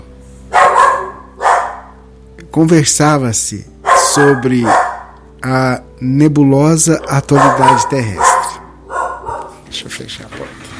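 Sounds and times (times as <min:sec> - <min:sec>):
small dogs barking: 0:00.5 - 0:02.0, 0:03.8 - 0:05.3, 0:07.0 - 0:09.7
speech: 0:02.6 - 0:08.3, 0:09.7 - 0:10.6.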